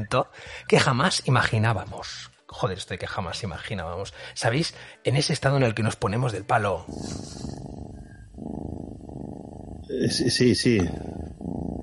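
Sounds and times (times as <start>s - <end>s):
speech: 0.0s - 7.7s, 9.9s - 11.2s
cat purring: 6.8s - 11.8s.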